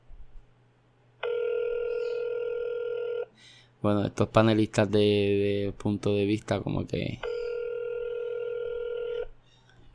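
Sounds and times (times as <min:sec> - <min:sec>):
phone line ringback tones: 0:01.2 - 0:03.3, 0:07.2 - 0:09.3
speech: 0:03.8 - 0:07.3.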